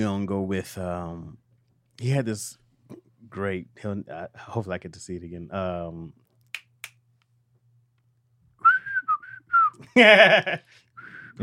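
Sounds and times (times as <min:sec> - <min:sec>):
speech: 0:00.0 - 0:01.4, 0:02.0 - 0:06.2, 0:09.8 - 0:10.8
finger snaps: 0:06.4 - 0:07.3
person whistling a TV theme tune melody: 0:08.6 - 0:09.8, 0:11.0 - 0:11.4
laughter: 0:09.9 - 0:10.7.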